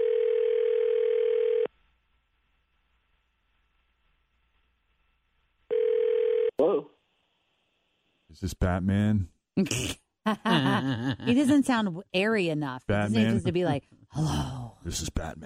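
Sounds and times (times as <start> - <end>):
telephone dial tone on an outgoing call: 0.0 - 1.7, 5.7 - 6.5
speech: 6.6 - 6.9, 8.3 - 15.4
laughter: 10.3 - 11.6.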